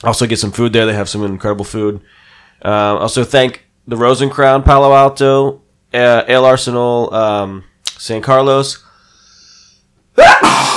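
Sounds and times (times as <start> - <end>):
speech: 0.0 - 8.8, 10.2 - 10.7
single loud sneeze with sharp rising intake and forceful breathy blast: 10.2 - 10.7.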